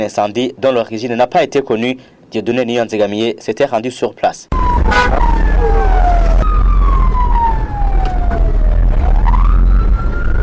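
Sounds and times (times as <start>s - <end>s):
speech: 0.0s - 5.2s
heavy rumble of fire engine engines: 4.5s - 10.4s
sirens of police, civil protection and Red Cross fire engines wailing: 4.5s - 10.4s.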